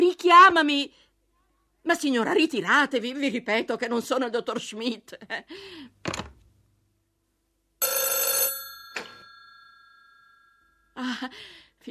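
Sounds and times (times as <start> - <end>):
speech: 0.3 - 1.0, 1.8 - 6.2, 11.0 - 11.8
telephone ringing with a metallic bell: 7.8 - 10.9.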